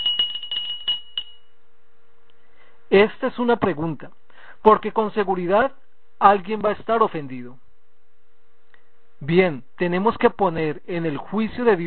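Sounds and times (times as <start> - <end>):
hand bell ringing: 0.0 - 1.5
speech: 2.9 - 7.6, 9.2 - 11.8.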